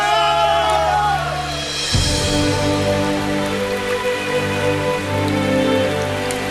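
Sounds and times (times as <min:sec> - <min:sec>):
heavy rain pouring down: 0:00.0 - 0:06.4.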